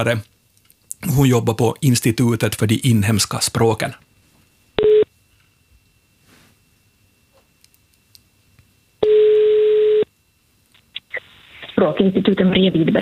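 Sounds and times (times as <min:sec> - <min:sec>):
speech: 0:00.0 - 0:00.3, 0:01.0 - 0:04.0, 0:11.8 - 0:13.0
telephone ringback tone while a call connects: 0:04.8 - 0:05.1, 0:09.0 - 0:10.1.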